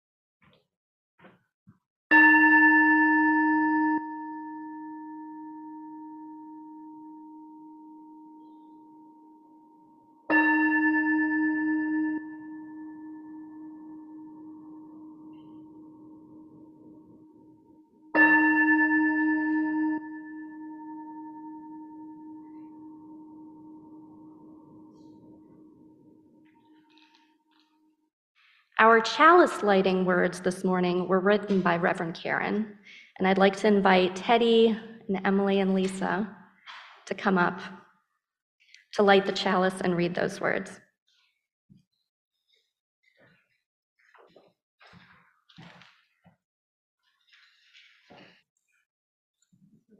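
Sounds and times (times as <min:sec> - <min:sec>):
worship bell struck to call people into worship: 0:02.1 - 0:27.4
speech: 0:29.0 - 0:37.8, 0:38.9 - 0:40.8.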